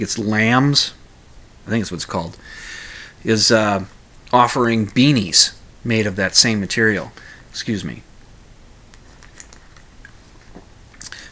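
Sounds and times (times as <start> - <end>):
speech: 0.0 - 1.0, 1.6 - 8.1
faint hiss: 0.0 - 11.3
person sipping beer: 8.9 - 11.3
wet mouth clicks: 8.9 - 11.3.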